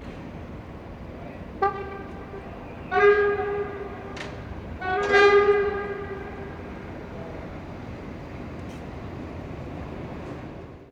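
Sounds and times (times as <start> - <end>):
train horn: 1.6 - 6.8.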